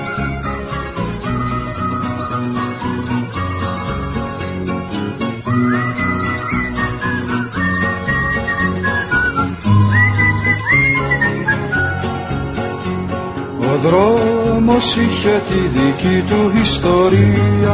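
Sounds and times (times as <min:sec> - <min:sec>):
performer whistling a sliding melodic tune in a competitive whistling performance: 0:00.0 - 0:00.6, 0:01.2 - 0:03.7, 0:05.4 - 0:12.1
full instrumental accompaniment: 0:00.0 - 0:17.7
speech: 0:14.8 - 0:17.7.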